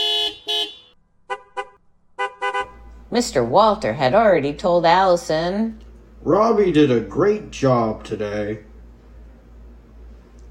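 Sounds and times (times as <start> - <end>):
car horns honking with long blasts and short double toots: 0.0 - 3.0
speech: 3.1 - 8.7.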